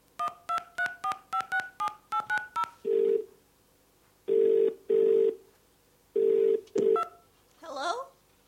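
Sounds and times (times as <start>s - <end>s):
touch-tone telephone dialing beeps: 0.2s - 3.1s, 6.3s - 7.2s
low steady telephone ringback tones: 0.2s - 3.3s, 4.3s - 5.4s, 6.2s - 7.2s
person answering the telephone: 7.6s - 8.2s.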